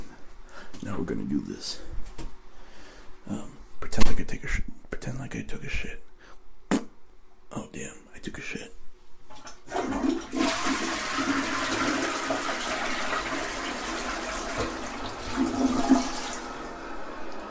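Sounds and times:
speech: 1.0 - 1.9, 3.3 - 6.1, 7.5 - 8.8
toilet flushing: 9.3 - 17.3.

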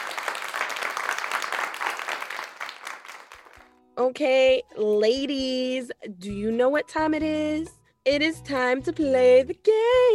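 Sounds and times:
crowd applauding: 0.0 - 3.7
speech: 4.0 - 10.1.

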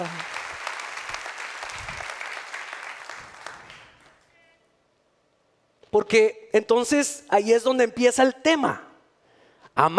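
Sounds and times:
room full of people applauding: 0.0 - 4.2
speech: 5.9 - 8.8, 9.8 - 9.9.

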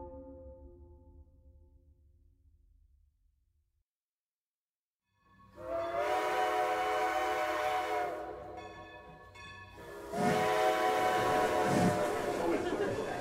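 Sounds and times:
steam locomotive hissing at station platform: 5.6 - 8.8, 9.7 - 13.1.

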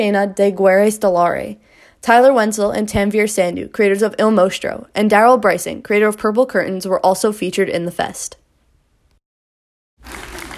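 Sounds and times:
speech: 0.0 - 8.4
audience applause at a student film festival: 10.0 - 10.5
wash of noise: 10.0 - 10.5.

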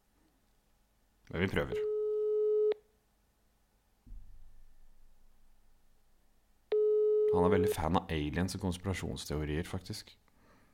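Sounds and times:
speech: 1.3 - 1.9, 7.6 - 10.2
phone ringback tone of an outgoing call: 6.7 - 7.8.

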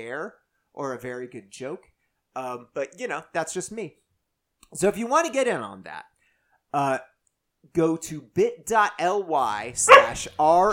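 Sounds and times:
speech: 0.0 - 4.0, 4.7 - 6.1, 6.7 - 10.7
dog barking and yelping: 9.8 - 10.3.

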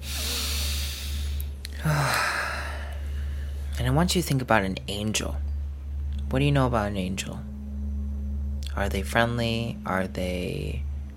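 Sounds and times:
deep breath taken slowly: 0.0 - 3.7
faint low steady hum: 0.0 - 11.1
speech: 3.9 - 5.5, 6.3 - 7.5, 8.8 - 10.9.

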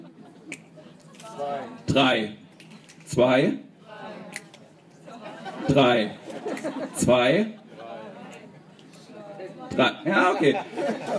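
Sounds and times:
laughter: 0.0 - 1.4, 5.0 - 8.2, 10.1 - 11.1
murmur of several people chattering: 0.0 - 11.1
finger snap: 0.5 - 0.7
speech: 1.3 - 2.4, 3.1 - 3.7, 5.6 - 7.6, 9.8 - 11.1.

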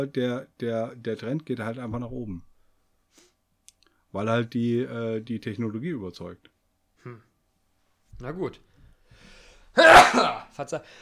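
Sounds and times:
speech: 0.0 - 2.5, 4.1 - 7.3, 8.2 - 8.7, 9.8 - 10.9
brief quiet vocal sounds: 7.0 - 7.3
single loud sneeze: 9.8 - 10.5.

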